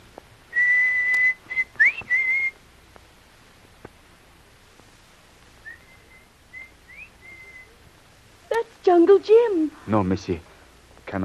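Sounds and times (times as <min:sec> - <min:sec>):
loud human signal whistle: 0:00.6 - 0:02.6, 0:05.6 - 0:07.7
speech: 0:09.0 - 0:10.5.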